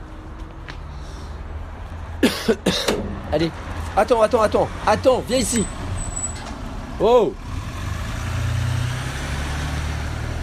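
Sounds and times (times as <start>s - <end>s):
speech: 2.3s - 5.8s, 7.0s - 7.4s
car engine rumbling with road noise while passing by: 7.5s - 10.4s.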